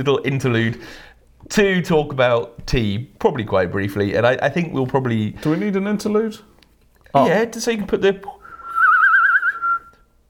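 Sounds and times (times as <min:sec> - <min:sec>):
speech: 0:00.0 - 0:06.5, 0:07.1 - 0:08.4
person whistling a warbling bird-like trill: 0:08.4 - 0:10.1.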